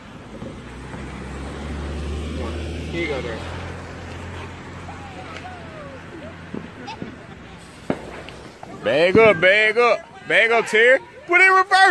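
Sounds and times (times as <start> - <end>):
car approaching with engine rumble and road noise: 0.0 - 9.3
speech: 3.0 - 3.6, 8.9 - 11.9.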